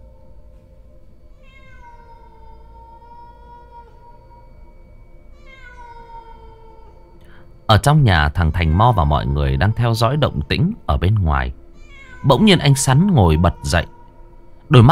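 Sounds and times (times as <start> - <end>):
cat meowing at night: 1.4 - 4.6, 5.3 - 7.1, 8.3 - 14.2
speech: 7.7 - 11.6, 12.2 - 14.0, 14.7 - 14.9.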